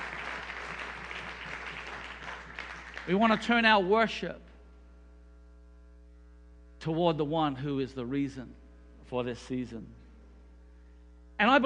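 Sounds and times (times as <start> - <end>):
congregation clapping hands: 0.0 - 3.6
speech: 3.1 - 4.5, 6.8 - 10.0, 11.4 - 11.6.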